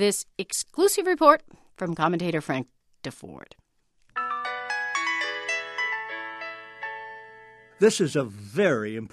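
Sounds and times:
speech: 0.0 - 3.6, 7.8 - 9.1
cell phone ringing with an electronic melody: 4.2 - 7.8.

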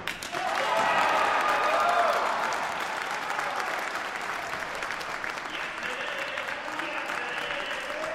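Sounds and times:
indoor audience applause after a world record: 0.1 - 8.1
indoor audience cheers and whoops: 0.3 - 4.8.

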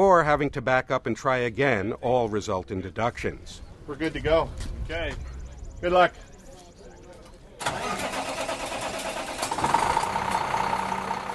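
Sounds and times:
speech: 0.0 - 6.3
white rear-loader garbage truck engine idling: 7.7 - 11.3.

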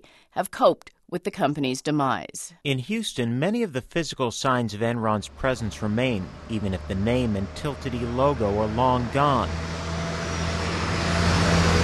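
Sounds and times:
speech: 0.4 - 9.8
cars driving along a downtown street in Houston: 4.4 - 11.8.

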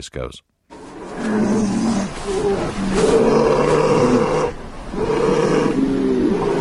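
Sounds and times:
polar bears roaring and growling while fighting: 0.7 - 6.6.

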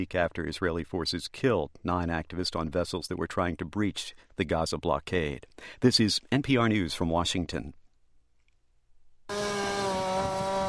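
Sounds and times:
speech: 0.0 - 7.8
chainsaw cutting tornado debris wood used by work crews south of Toledo Ohio: 9.3 - 10.6.

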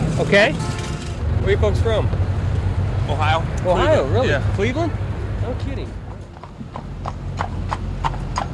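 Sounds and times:
speech: 0.2 - 0.7, 1.4 - 2.2, 3.1 - 6.0
horse hooves clip-clopping pulling a carriage through a park: 5.9 - 8.5.

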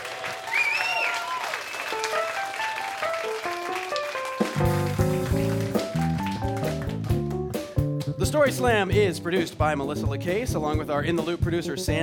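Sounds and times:
audience applause: 0.0 - 7.4
band playing a bright melodic tune: 2.0 - 12.0
speech: 8.3 - 12.0.

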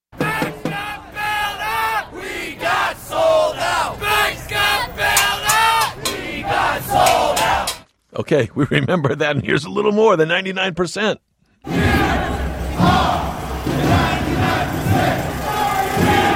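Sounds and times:
protest crowd chanting in New York's financial district: 0.1 - 7.8, 11.6 - 16.3
speech: 8.2 - 11.9.

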